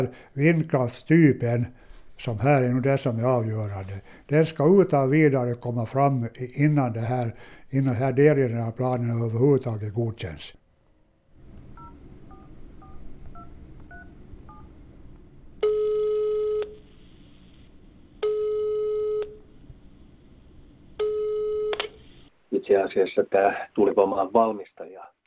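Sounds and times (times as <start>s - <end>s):
speech: 0.0s - 10.6s, 22.7s - 25.2s
quick telephone dial tones: 11.8s - 14.7s, 15.6s - 17.2s, 18.2s - 19.4s, 21.0s - 22.0s.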